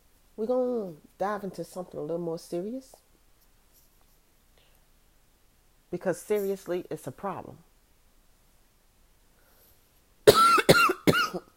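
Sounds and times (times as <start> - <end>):
speech: 0.4 - 3.0, 5.9 - 7.7
harsh coughing: 10.2 - 11.5.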